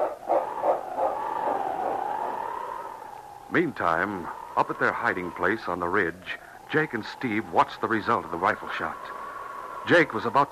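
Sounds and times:
large dog barking on a snowy trail: 0.0 - 2.0
speech: 3.5 - 9.2, 9.8 - 10.4.

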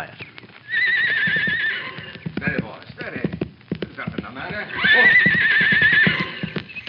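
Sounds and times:
horse hooves clip-clopping: 0.0 - 6.8
horse whinnying: 0.6 - 2.4, 4.5 - 6.7.

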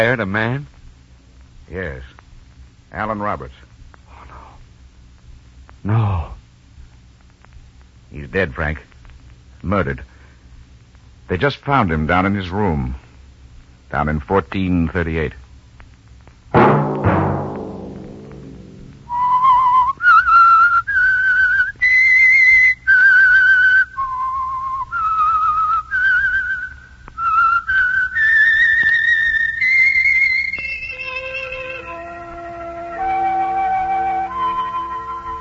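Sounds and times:
speech: 0.0 - 0.7, 1.7 - 2.2, 2.9 - 3.7, 5.8 - 6.4, 8.1 - 8.9, 9.6 - 10.1, 11.3 - 13.0, 13.9 - 15.4
sharp chord-like hit: 16.6 - 19.1
lone whistler whistling a slow eerie radio program theme: 19.1 - 35.4.

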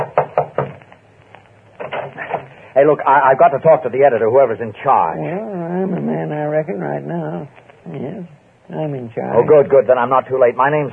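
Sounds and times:
fist pounding on the door of a copy room: 0.0 - 0.8
speech: 2.8 - 10.9.

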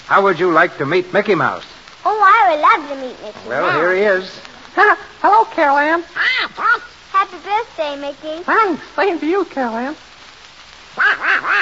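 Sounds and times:
speech: 0.1 - 10.1, 11.0 - 11.6
cartoonish duck voice quacking and squawking: 2.1 - 4.1, 6.2 - 8.8, 11.0 - 11.6.

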